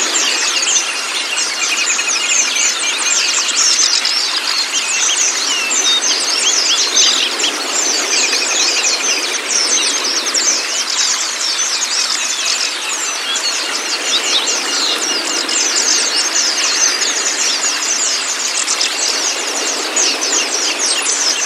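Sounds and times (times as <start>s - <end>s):
white-eye song chorus of high twittering chirps: 0.0s - 21.4s.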